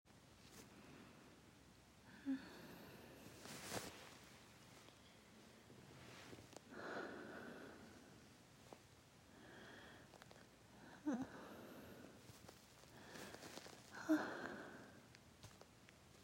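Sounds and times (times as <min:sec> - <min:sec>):
background noise: 0:00.1 - 0:16.2
bed sheet rustling: 0:03.2 - 0:04.9, 0:12.2 - 0:14.0
person moaning: 0:10.9 - 0:11.9.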